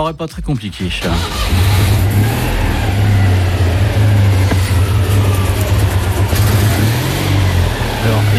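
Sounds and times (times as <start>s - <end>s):
speech: 0.0s - 1.9s
engine humming and revving: 1.0s - 8.3s.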